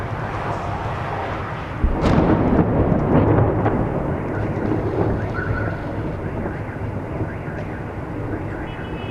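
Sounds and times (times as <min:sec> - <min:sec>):
incoming missile: 0:00.1 - 0:07.3
explosion: 0:00.2 - 0:08.9.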